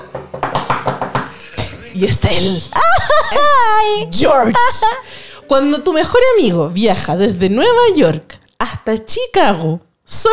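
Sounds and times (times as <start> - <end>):
sharp taps on a hard surface imitating knocking on a door: 0.1 - 2.4
laughter: 0.8 - 7.2
speech: 2.0 - 10.3.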